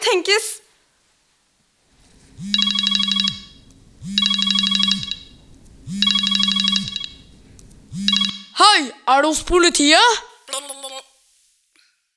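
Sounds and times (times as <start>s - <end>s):
speech: 0.1s - 0.6s, 2.4s - 2.8s, 9.1s - 10.3s
telephone ringing tone while calling the police: 2.0s - 8.6s.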